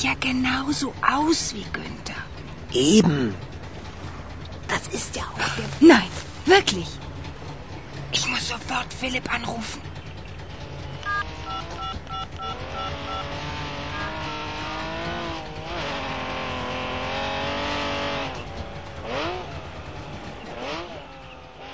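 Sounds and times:
speech: 0.0s - 3.5s, 4.7s - 7.0s, 8.3s - 9.9s
Porsche and Trabant car engines revving as they drive up: 0.0s - 21.7s
brief electronic beeps: 11.0s - 14.3s.

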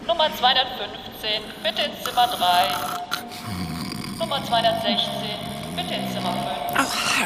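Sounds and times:
faint murmur of indistinct voices: 0.0s - 7.2s
room noise: 0.0s - 7.2s
speech: 0.2s - 3.6s, 4.2s - 7.2s
person snoring with a low rasping rumble: 1.6s - 7.2s.

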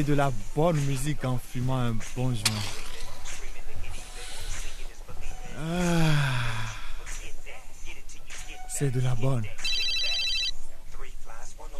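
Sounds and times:
speech: 0.0s - 2.8s, 5.6s - 6.2s, 8.8s - 9.6s
home telephone ringing: 9.6s - 10.6s.

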